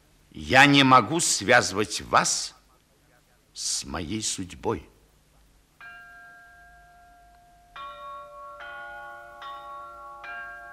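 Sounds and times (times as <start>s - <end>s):
faint low hum: 0.0s - 10.7s
speech: 0.4s - 2.6s, 3.6s - 4.9s
church bells ringing announcing a birth: 5.8s - 10.7s.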